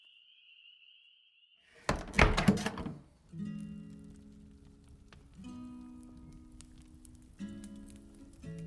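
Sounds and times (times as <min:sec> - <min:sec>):
heavy tavern door slamming shut: 0:01.9 - 0:03.0.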